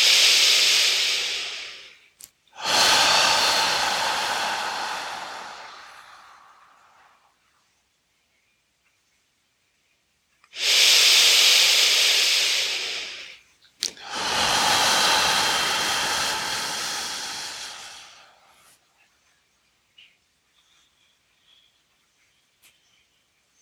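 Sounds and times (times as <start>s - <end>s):
medium to full in-breath during lower-belly breathing exercise: 0.0s - 7.2s, 10.6s - 18.8s.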